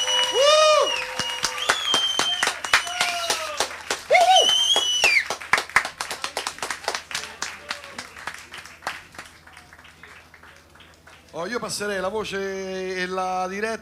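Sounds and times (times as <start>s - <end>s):
sliding whistles: 0.0s - 3.3s, 4.1s - 5.4s
people cheering: 0.0s - 11.6s
audience applauding a live band: 0.0s - 12.2s
speech: 11.4s - 13.8s.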